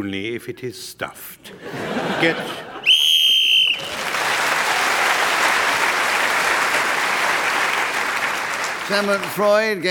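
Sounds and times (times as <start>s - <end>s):
speech: 0.0s - 2.7s, 8.9s - 9.9s
laughter: 1.5s - 2.9s
shrill whistle blown to end a game round: 2.9s - 3.9s
audience applause: 3.4s - 9.9s.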